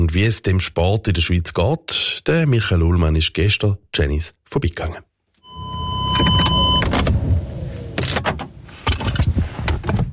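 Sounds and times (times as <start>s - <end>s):
speech: 0.0s - 5.1s
car electric window humming: 5.5s - 8.7s
car engine rumbling: 5.5s - 10.1s.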